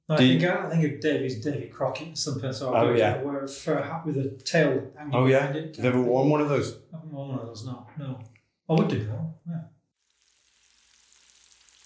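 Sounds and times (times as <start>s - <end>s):
speech: 0.1s - 9.7s
British sausages sizzling in a frying pan: 10.0s - 11.8s.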